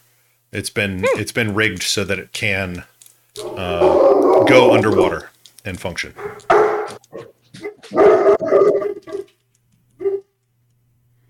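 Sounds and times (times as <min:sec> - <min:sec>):
speech: 0:00.5 - 0:06.5, 0:07.1 - 0:08.8
several dogs barking outside: 0:01.0 - 0:01.3, 0:06.2 - 0:09.3, 0:10.0 - 0:10.3.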